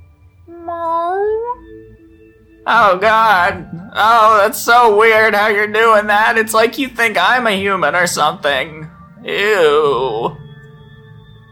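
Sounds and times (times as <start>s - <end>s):
orange cat meowing: 0.5s - 1.7s
speech: 2.7s - 10.3s.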